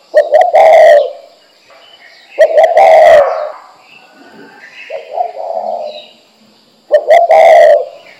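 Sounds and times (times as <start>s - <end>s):
spotted dove cooing: 0.0s - 1.3s, 2.4s - 6.2s, 6.9s - 8.1s.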